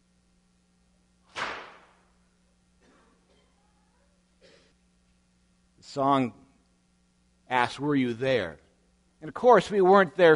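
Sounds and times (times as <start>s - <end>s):
low steady hum: 0.0s - 10.3s
loud sharp whip crack: 1.3s - 2.0s
speech: 6.0s - 6.4s, 7.5s - 8.6s, 9.2s - 10.3s.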